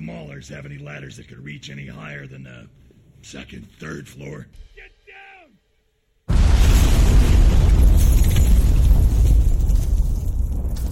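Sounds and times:
speech: 0:00.2 - 0:05.0
pipe bomb explosion with a dense low roar: 0:06.3 - 0:10.9.

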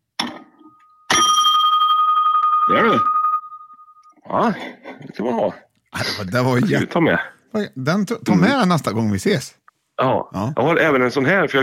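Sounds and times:
bell ringing: 0:00.7 - 0:04.2
speech: 0:02.7 - 0:03.1, 0:04.3 - 0:11.6.

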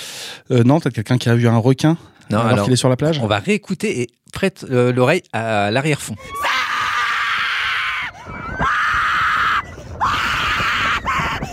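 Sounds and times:
speech: 0:00.5 - 0:06.5
group of people screaming: 0:06.2 - 0:11.5.

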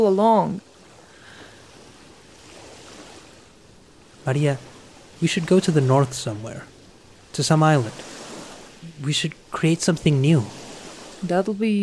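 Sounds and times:
speech: 0:00.0 - 0:00.7, 0:04.2 - 0:06.7, 0:07.3 - 0:08.2, 0:09.0 - 0:10.6, 0:11.2 - 0:11.8
ocean surf washing toward shore: 0:00.0 - 0:11.8
wind: 0:00.0 - 0:11.8.

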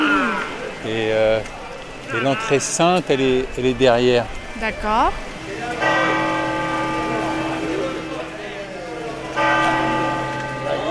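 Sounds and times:
faint outdoor murmur: 0:00.0 - 0:10.8
speech: 0:00.8 - 0:05.9
large bells of the cathedral of Santiago ringing: 0:05.6 - 0:10.8.

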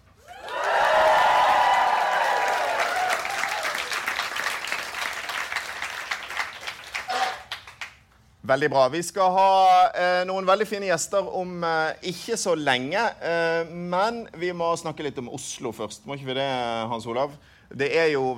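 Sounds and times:
large live audience cheering and whooping: 0:00.2 - 0:04.8
large live audience applauding: 0:00.2 - 0:08.0
speech: 0:08.5 - 0:18.3.

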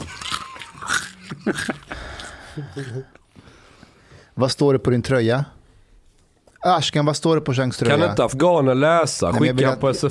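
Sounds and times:
crunchy food chewing: 0:00.0 - 0:02.5
person murmuring: 0:00.2 - 0:03.2
speech: 0:01.5 - 0:01.8, 0:02.6 - 0:03.2, 0:04.4 - 0:05.6, 0:06.6 - 0:10.1.

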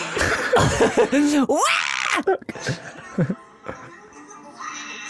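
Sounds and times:
laughter: 0:00.2 - 0:03.9
woman screaming as she is flipped: 0:01.2 - 0:02.4.

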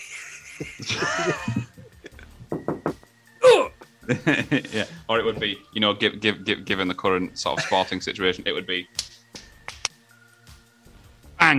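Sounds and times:
laughter: 0:00.0 - 0:02.3, 0:04.1 - 0:05.0, 0:07.6 - 0:08.0
speech: 0:00.6 - 0:01.7, 0:04.1 - 0:09.0
voice imitating knocking on straight drywall: 0:02.4 - 0:03.8
breathy wheezing vocal noises: 0:04.6 - 0:05.1.

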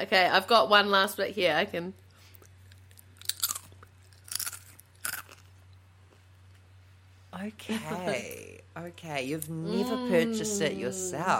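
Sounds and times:
speech: 0:00.0 - 0:02.0, 0:07.3 - 0:11.3
low steady hum: 0:00.0 - 0:11.3
wet-sounding crunches of a snack being chewed: 0:02.3 - 0:06.7.

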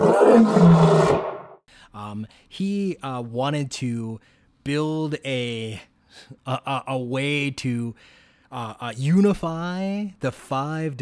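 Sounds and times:
lion of the film studio logo roaring: 0:00.0 - 0:01.5
speech: 0:00.4 - 0:01.0, 0:02.1 - 0:11.0.

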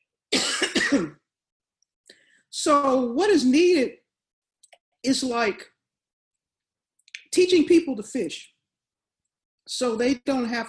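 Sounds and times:
cough and throat clearing from a tickle in the throat: 0:00.3 - 0:01.3
speech: 0:00.9 - 0:01.2, 0:02.6 - 0:04.0, 0:05.0 - 0:05.7, 0:07.3 - 0:08.5, 0:09.7 - 0:10.6.

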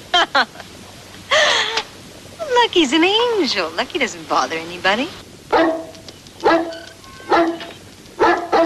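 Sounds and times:
speech: 0:00.2 - 0:00.6, 0:02.6 - 0:05.8
dog barking: 0:05.5 - 0:08.6.

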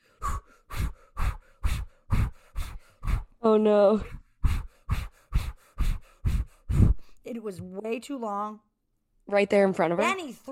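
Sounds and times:
heavy rhythmic Lamaze-style breathing: 0:00.0 - 0:07.3
speech: 0:03.4 - 0:04.2, 0:07.4 - 0:08.7, 0:09.3 - 0:10.5.

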